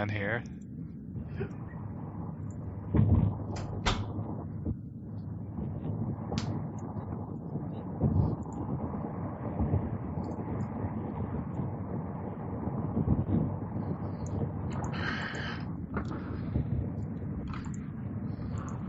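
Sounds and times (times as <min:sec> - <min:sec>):
speech: 0:00.0 - 0:00.7, 0:01.4 - 0:01.6
steady rumbling background: 0:00.0 - 0:18.8
door being pushed shut: 0:03.5 - 0:04.2.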